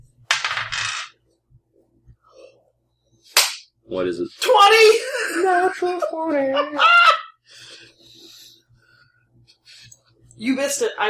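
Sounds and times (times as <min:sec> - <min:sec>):
dice clattering during a tabletop role-playing game roll: 0:00.3 - 0:01.1
speech: 0:03.9 - 0:07.1, 0:10.4 - 0:11.0.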